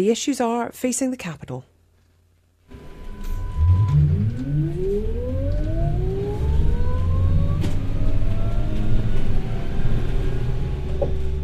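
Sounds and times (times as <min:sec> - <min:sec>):
speech: 0:00.0 - 0:01.7
city bus engine in Wellington rumbling on a rainy spring day: 0:02.8 - 0:11.4.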